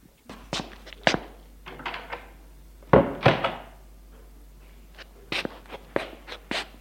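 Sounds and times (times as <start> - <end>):
apartment door shutting with a solid thunk: 1.7 - 2.3, 2.9 - 3.8.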